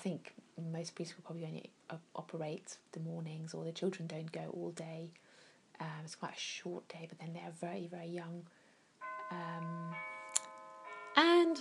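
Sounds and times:
speech: 0:00.0 - 0:08.6, 0:09.3 - 0:10.1, 0:11.2 - 0:11.6
two-stage electronic doorbell chime for a grocery delivery: 0:09.0 - 0:11.6.

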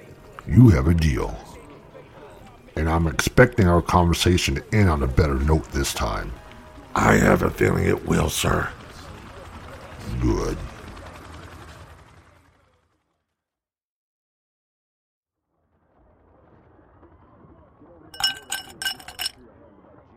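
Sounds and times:
speech: 0:00.5 - 0:01.5, 0:02.8 - 0:08.8
brandy glass clinking as it is set down and served: 0:18.2 - 0:19.4.

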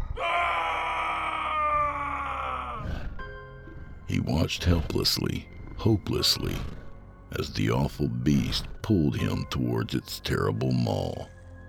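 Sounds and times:
man screaming in terror: 0:00.0 - 0:03.0
man's ragged breath: 0:02.0 - 0:08.9
speech: 0:04.1 - 0:11.4.

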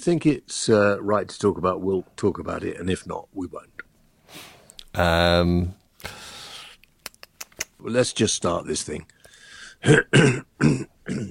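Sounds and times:
speech: 0:00.0 - 0:06.2, 0:07.8 - 0:09.2, 0:09.8 - 0:11.3
person clearing throat: 0:09.8 - 0:11.3
person coughing: 0:09.8 - 0:11.3.

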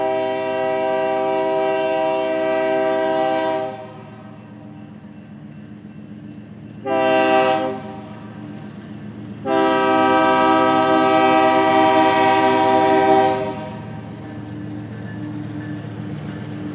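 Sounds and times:
loud train horn from a long train on a misty foggy night: 0:00.0 - 0:04.4, 0:06.8 - 0:08.2, 0:09.4 - 0:14.0
steady low rail rumble of a long train: 0:00.0 - 0:16.7.

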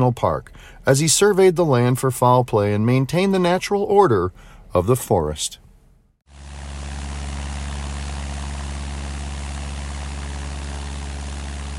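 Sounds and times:
speech: 0:00.0 - 0:05.6
small propeller plane engine droning in flight over Yellowstone National Park: 0:06.3 - 0:11.7.

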